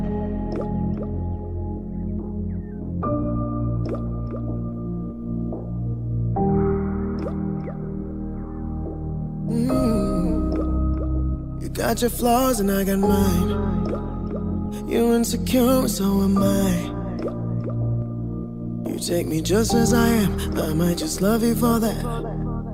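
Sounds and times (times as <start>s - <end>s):
sustained synth chords in an instrumental song intro: 0.0s - 22.7s
regular water-drip plinks: 0.5s - 1.4s, 3.8s - 5.9s, 7.1s - 7.8s, 10.2s - 11.4s, 13.8s - 14.9s, 17.2s - 18.1s
speech: 11.8s - 13.7s, 14.9s - 17.4s, 19.0s - 22.4s.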